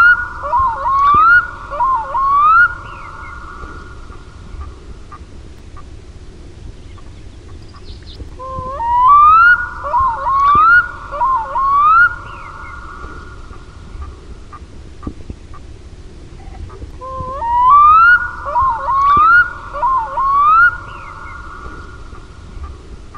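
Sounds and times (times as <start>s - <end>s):
black-throated loon wailing whistles: 0.0s - 4.0s, 8.4s - 13.5s, 17.0s - 22.0s.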